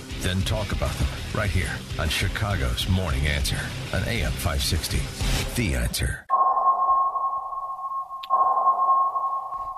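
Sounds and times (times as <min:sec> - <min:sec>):
speech: 0:00.2 - 0:06.3
brief bright submarine sonar ping: 0:06.3 - 0:09.7
steady humming electronic tone: 0:06.3 - 0:09.7.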